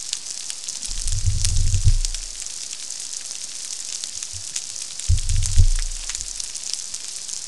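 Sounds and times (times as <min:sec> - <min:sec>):
unknown species thump on Sand Island: 0:00.9 - 0:02.3, 0:05.1 - 0:06.4.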